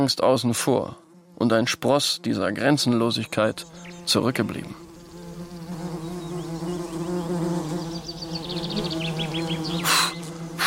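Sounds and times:
speech: 0:00.0 - 0:04.8
wasps buzzing around leftover fig bread on a garden table: 0:00.9 - 0:10.6.

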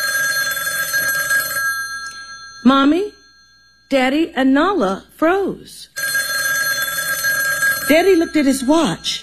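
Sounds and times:
home telephone ringing with a trilling electronic bell tone: 0:00.0 - 0:04.0, 0:06.0 - 0:09.2
speech: 0:02.6 - 0:03.2, 0:03.9 - 0:06.0, 0:07.9 - 0:09.2.

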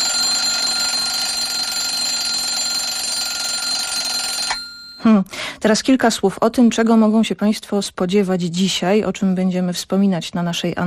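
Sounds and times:
alarm clock ringing: 0:00.0 - 0:05.0
speech: 0:05.0 - 0:10.8.

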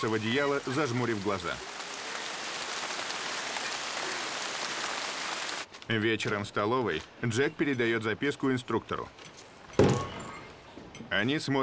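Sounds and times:
speech: 0:00.0 - 0:01.8, 0:05.9 - 0:10.0, 0:11.1 - 0:11.6
steady rain pouring down beneath trees: 0:00.0 - 0:05.7.

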